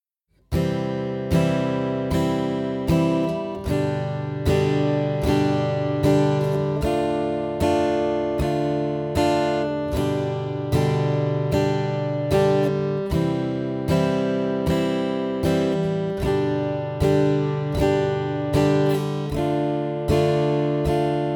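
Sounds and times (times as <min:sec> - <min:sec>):
guitar chord progression: 0:00.5 - 0:21.3.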